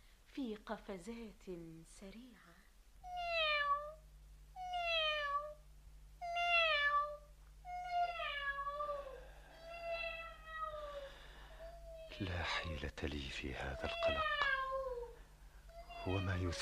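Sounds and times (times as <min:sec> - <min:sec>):
low steady hum: 0:00.0 - 0:16.6
speech: 0:00.4 - 0:03.2, 0:12.2 - 0:14.5, 0:16.0 - 0:16.6
cat meowing: 0:03.1 - 0:04.0, 0:04.6 - 0:05.6, 0:06.2 - 0:12.4, 0:13.6 - 0:16.6.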